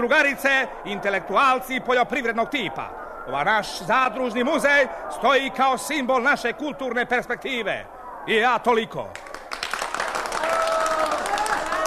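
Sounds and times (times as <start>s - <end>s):
speech: 0.0s - 9.3s
crowd applauding after a welcome speech at a cooperative museum opening: 9.1s - 11.8s.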